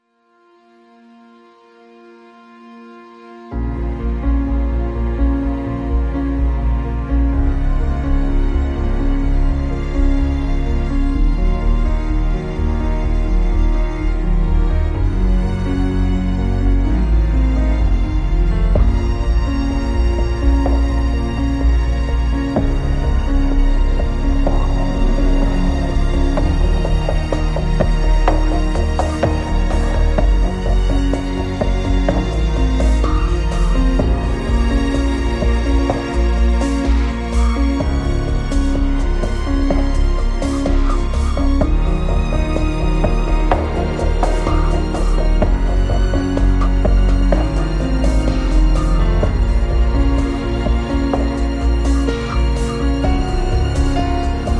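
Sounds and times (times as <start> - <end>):
elegant dramatic building music: 0.9 - 54.5.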